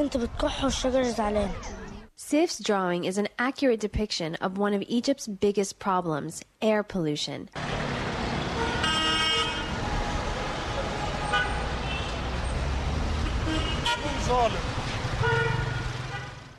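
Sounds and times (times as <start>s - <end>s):
busy street traffic with taxis and buses in Cairo Egypt: 0.0s - 2.1s, 7.6s - 16.5s
speech: 0.0s - 7.8s, 14.3s - 14.7s
car horns honking in city traffic in Cairo Egypt: 8.3s - 9.8s, 10.6s - 16.5s.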